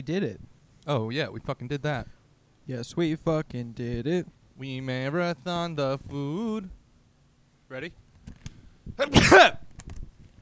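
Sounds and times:
speech: 0:00.0 - 0:06.8, 0:07.7 - 0:08.0, 0:08.9 - 0:09.6
loud sneeze: 0:09.0 - 0:09.6.

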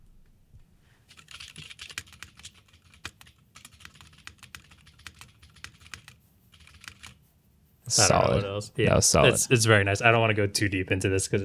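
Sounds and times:
rapid typing on a heavy mechanical keyboard: 0:01.1 - 0:07.2
speech: 0:07.9 - 0:11.4.

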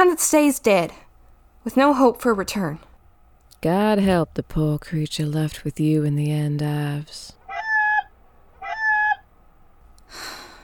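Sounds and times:
speech: 0:00.0 - 0:01.0, 0:01.6 - 0:02.9, 0:03.6 - 0:07.4
chicken squawking: 0:07.5 - 0:09.3
breathy hissing rush: 0:10.1 - 0:10.6.

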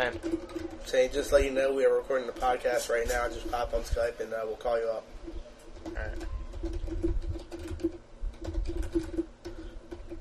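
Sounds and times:
typing on a computer keyboard: 0:00.0 - 0:01.6, 0:05.6 - 0:10.1
speech: 0:00.0 - 0:05.2, 0:05.8 - 0:06.3.

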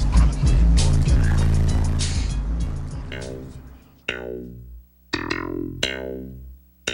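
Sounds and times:
booming bass from car stereo system: 0:00.0 - 0:04.7.

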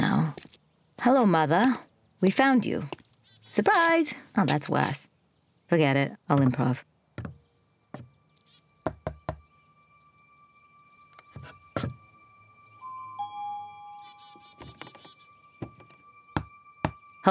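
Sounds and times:
speech: 0:01.0 - 0:03.0, 0:03.6 - 0:05.1, 0:05.7 - 0:07.4, 0:11.8 - 0:12.0
knocking on a door: 0:07.2 - 0:07.4, 0:08.8 - 0:09.4, 0:14.6 - 0:17.0
faint tonal chirps: 0:07.4 - 0:17.2
soft chime: 0:09.5 - 0:17.2.

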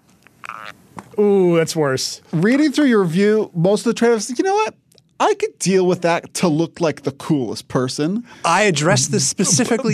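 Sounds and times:
folding phone creaking as it closes: 0:00.2 - 0:00.8
speech: 0:00.6 - 0:09.9
laughter: 0:08.7 - 0:09.9.

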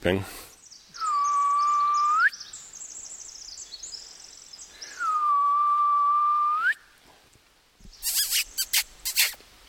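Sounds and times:
speech: 0:00.0 - 0:00.4
person whistling an owl contact call imitation: 0:01.0 - 0:02.4, 0:04.9 - 0:06.8
sharp scratchy squeaks: 0:08.0 - 0:09.4.

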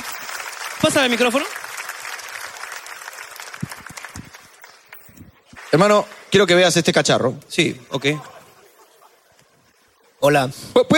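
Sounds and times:
audience applause: 0:00.0 - 0:05.0
speech: 0:00.8 - 0:01.6, 0:05.7 - 0:08.3, 0:10.2 - 0:10.9
laughter: 0:08.0 - 0:10.3.

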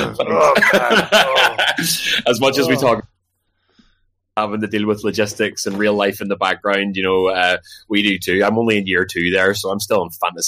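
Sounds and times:
throaty cough: 0:00.0 - 0:02.0
laughter: 0:00.0 - 0:03.0
speech: 0:00.1 - 0:03.1, 0:04.4 - 0:10.4.

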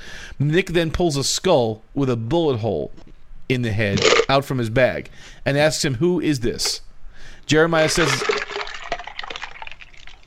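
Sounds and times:
speech: 0:00.4 - 0:06.8, 0:07.5 - 0:08.3
drink pouring into a glass: 0:07.9 - 0:10.2.

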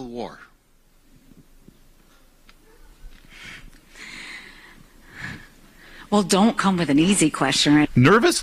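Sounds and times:
speech: 0:00.1 - 0:00.5, 0:06.1 - 0:08.4
nervous breathing into a microphone: 0:03.2 - 0:06.1.

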